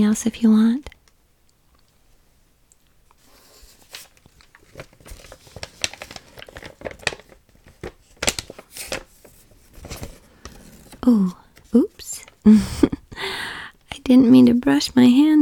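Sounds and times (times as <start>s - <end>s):
speech: 0.0s - 0.9s, 14.1s - 15.4s
paper crinkling and creasing as sheets are folded into cranes: 3.2s - 12.5s.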